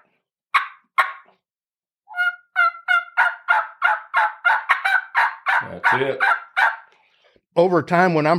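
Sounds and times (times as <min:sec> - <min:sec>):
sharp short clucks made on a turkey call: 0:00.0 - 0:01.3, 0:02.1 - 0:07.0
speech: 0:05.6 - 0:06.3, 0:07.6 - 0:08.3.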